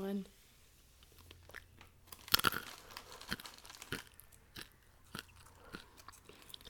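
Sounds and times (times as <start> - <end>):
crunching and chewing of a dry snack: 1.0 - 6.6
bag crinkling: 1.5 - 6.6.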